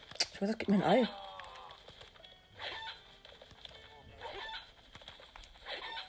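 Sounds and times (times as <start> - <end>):
speech: 0.4 - 1.2
chicken clucking: 4.2 - 4.7, 5.6 - 6.0.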